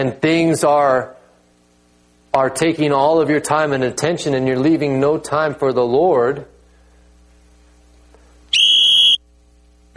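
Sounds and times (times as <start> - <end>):
speech: 0.0 - 1.2, 2.3 - 6.5
whistle blown in front of an audience: 8.5 - 9.2.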